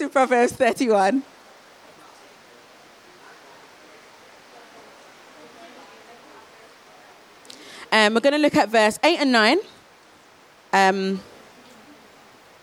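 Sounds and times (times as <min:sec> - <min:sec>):
speech: 0:00.0 - 0:01.4, 0:08.0 - 0:09.8, 0:10.7 - 0:11.3
rain falling: 0:00.0 - 0:12.6.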